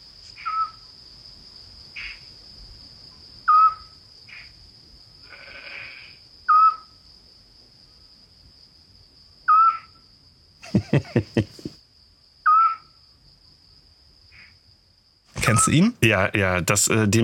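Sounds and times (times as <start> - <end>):
steady high insect drone at night: 0.0 - 17.2
Eurasian scops owl calling at night: 0.4 - 0.8, 3.5 - 3.9, 6.5 - 6.9, 9.5 - 10.0, 12.4 - 12.9
laughter: 10.6 - 11.8
speech: 10.9 - 11.6, 15.6 - 17.2.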